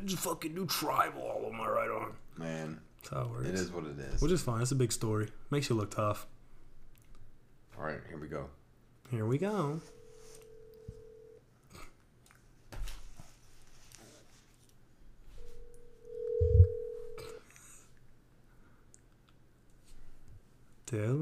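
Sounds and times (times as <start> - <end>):
speech: 0.0 - 6.4, 7.8 - 10.0, 20.9 - 21.2
telephone call ringing tones: 9.6 - 11.4, 15.4 - 17.4.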